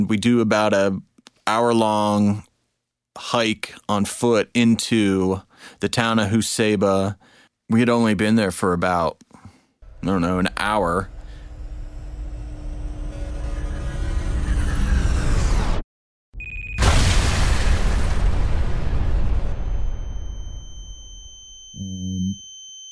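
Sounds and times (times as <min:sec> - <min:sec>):
speech: 0:00.0 - 0:02.5, 0:03.2 - 0:09.3, 0:10.0 - 0:11.2
brief tonal hum: 0:09.9 - 0:15.2, 0:19.7 - 0:22.8
IED explosion buried deep in the ground blowing up earth: 0:16.8 - 0:21.1.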